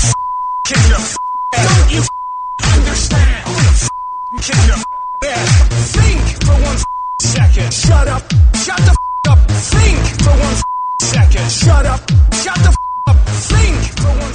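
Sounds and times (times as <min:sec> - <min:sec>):
steady high censor bleeps: 0:00.0 - 0:07.4, 0:08.8 - 0:09.5, 0:10.6 - 0:11.2, 0:12.5 - 0:13.2
choppy bursts of an agitated voice in a remixed ranting speech: 0:00.0 - 0:14.3.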